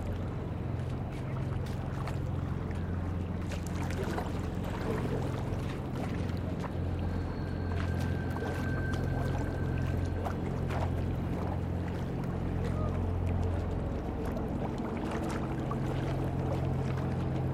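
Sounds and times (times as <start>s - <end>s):
passing boat's low engine drone: 0.0s - 17.5s
river water lapping against stone steps: 0.0s - 17.5s
faint thin whine: 2.9s - 11.6s.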